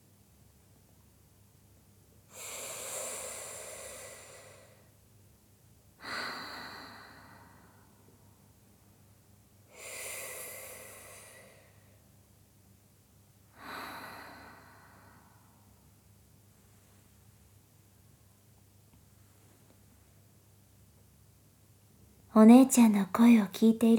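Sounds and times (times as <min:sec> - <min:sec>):
slow deep breathing: 0:02.3 - 0:04.9, 0:06.0 - 0:08.0, 0:09.7 - 0:12.0, 0:13.5 - 0:15.8
speech: 0:22.4 - 0:23.9.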